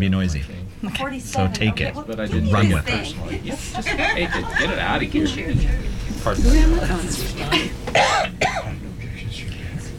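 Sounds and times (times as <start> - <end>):
speech: 0.0 - 8.8
laughter: 3.3 - 8.0
person with a bad cough coughing: 7.9 - 8.8.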